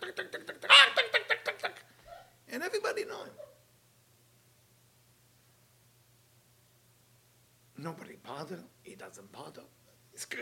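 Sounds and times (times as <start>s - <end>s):
person imitating a clucking chicken: 0.0s - 2.2s
speech: 8.5s - 10.3s.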